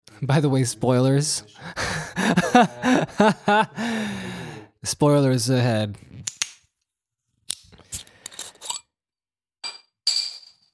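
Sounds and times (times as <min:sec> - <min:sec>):
speech: 0:00.2 - 0:06.3
laughter: 0:01.5 - 0:04.7
small metal bottle cap dropping and clinking: 0:08.2 - 0:08.9.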